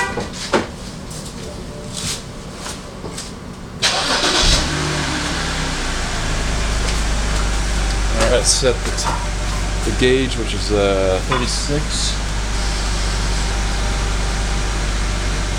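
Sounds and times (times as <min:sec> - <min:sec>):
car engine cranking, starting and idling: 0:03.8 - 0:15.5
speech: 0:08.4 - 0:12.2.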